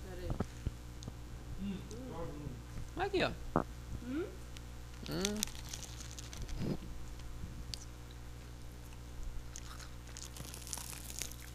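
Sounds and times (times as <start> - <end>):
low hum: 0.0 - 11.5
speech: 3.0 - 4.4, 5.1 - 5.6
someone biting into a crunchy snack: 4.9 - 6.8, 8.8 - 11.5.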